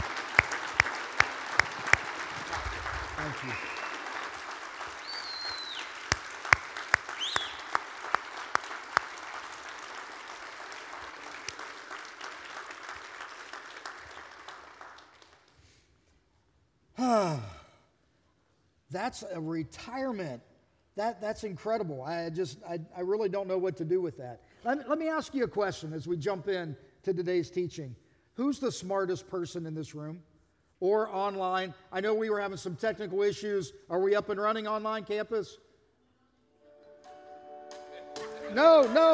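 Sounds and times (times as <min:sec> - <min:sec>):
people whooping: 0:00.0 - 0:09.3
large crowd applauding in a standing ovation: 0:00.0 - 0:15.6
speech: 0:03.2 - 0:03.7, 0:19.0 - 0:35.6, 0:38.5 - 0:39.1.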